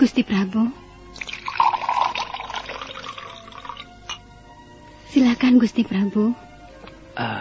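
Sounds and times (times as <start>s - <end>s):
speech: 0.0s - 0.8s, 5.1s - 6.4s, 7.2s - 7.3s
drink pouring into a cup: 1.2s - 4.2s.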